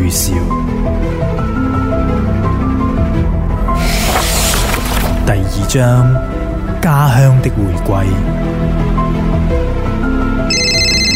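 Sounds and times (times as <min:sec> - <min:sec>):
continuous music: 0:00.0 - 0:11.1
speech: 0:00.1 - 0:00.6, 0:05.7 - 0:09.6
phone ringtone from an incoming call: 0:10.5 - 0:11.1.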